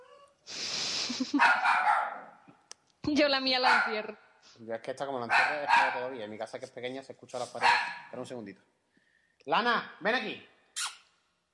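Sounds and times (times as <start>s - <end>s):
speech: 1.1s - 1.7s, 3.1s - 8.8s, 9.4s - 10.5s
female dog barking and yipping: 1.4s - 2.4s, 3.6s - 4.1s, 5.2s - 6.2s, 7.5s - 8.2s.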